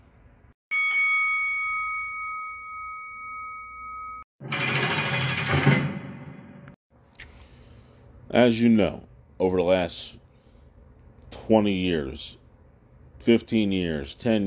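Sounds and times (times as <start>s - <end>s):
bell ringing with a clear sustained tone: 0.7s - 6.2s
harsh rattling clatter: 4.4s - 6.3s
speech: 8.3s - 10.2s, 11.5s - 12.4s, 13.2s - 14.4s.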